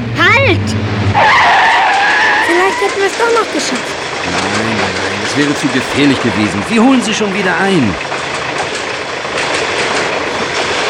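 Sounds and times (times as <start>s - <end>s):
long train wheels and cars roaring past at a level crossing: 0.0s - 10.8s
faint rhythmic train wheel clacking: 2.4s - 10.8s
speech: 2.8s - 8.2s.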